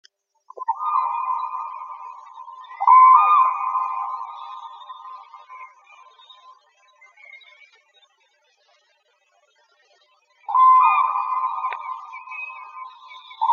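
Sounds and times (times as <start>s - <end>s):
common crane calling: 0.5s - 6.2s, 10.5s - 13.5s.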